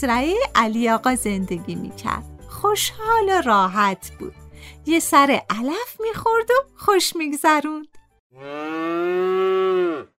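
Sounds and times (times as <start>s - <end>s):
speech: 0.0s - 10.1s
big fat cow mooing on a farm: 8.4s - 10.1s.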